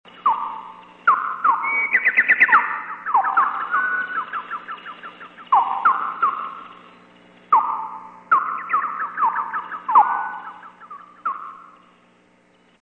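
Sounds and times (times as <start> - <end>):
guidance melody for blind people on the Nanakuma Line: 0.3 - 6.7, 7.6 - 11.7.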